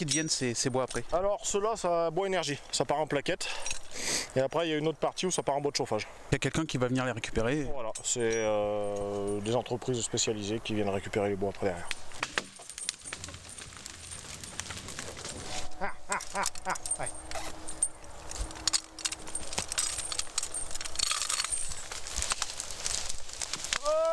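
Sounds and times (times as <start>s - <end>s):
horse harness and bit jingling: 0.0s - 1.9s, 3.4s - 4.0s, 7.7s - 23.8s
speech: 0.0s - 12.1s
working horse munching on leaves: 12.0s - 24.1s.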